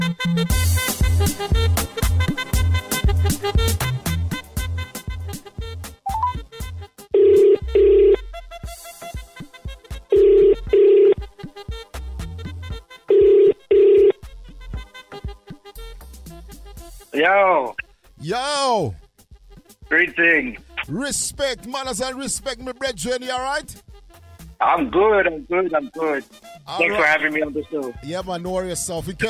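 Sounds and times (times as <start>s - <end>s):
busy musical backing: 0.0s - 13.1s, 14.5s - 23.8s, 24.4s - 29.2s
outgoing phone call ringback tones: 6.1s - 6.4s, 7.2s - 8.2s, 10.1s - 11.2s, 13.1s - 14.2s
speech: 19.9s - 23.9s, 24.6s - 29.2s.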